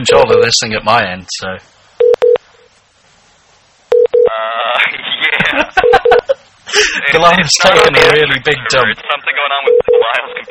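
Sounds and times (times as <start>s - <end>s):
speech: 0.0s - 1.7s, 4.8s - 10.5s
outgoing phone call ringing tone in double pulses: 3.9s - 4.3s, 5.8s - 6.3s, 9.7s - 10.5s
laughter: 4.8s - 7.1s.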